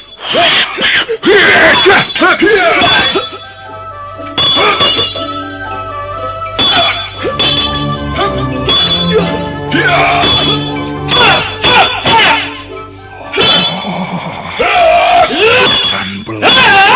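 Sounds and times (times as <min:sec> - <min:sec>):
voices groaning and crying out during fight: 0:00.2 - 0:03.6, 0:08.1 - 0:16.9
staff clashing against a sword with metallic ring: 0:01.5 - 0:03.5, 0:06.6 - 0:12.6, 0:13.3 - 0:13.9, 0:15.2 - 0:16.9.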